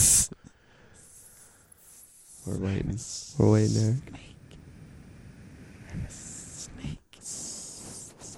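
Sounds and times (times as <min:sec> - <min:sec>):
person hissing like a snake: 0:00.0 - 0:00.4, 0:01.0 - 0:03.9, 0:05.5 - 0:08.3
soft mouth sounds: 0:00.0 - 0:03.4, 0:04.1 - 0:08.3
speech: 0:02.4 - 0:04.3.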